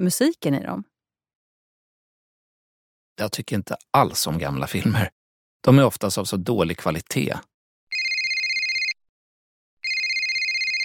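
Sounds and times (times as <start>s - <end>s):
speech: 0.0s - 0.9s, 3.2s - 7.5s
mobile phone ringtone signalling an incoming call: 7.9s - 9.0s, 9.8s - 10.8s.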